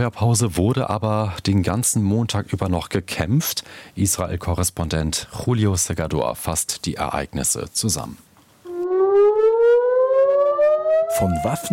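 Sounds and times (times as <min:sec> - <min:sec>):
speech: 0:00.0 - 0:08.3, 0:11.1 - 0:11.7
air raid siren wailing in northern Israel: 0:08.7 - 0:11.7.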